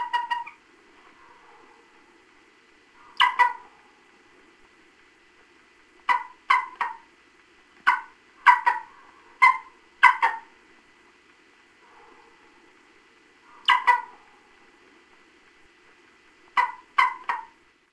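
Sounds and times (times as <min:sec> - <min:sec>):
faint steady background hum: 0:00.0 - 0:17.9
golden eagle sharp yelping calls in North America: 0:03.0 - 0:03.7, 0:06.1 - 0:07.1, 0:07.9 - 0:10.5, 0:13.5 - 0:14.2, 0:16.6 - 0:17.6.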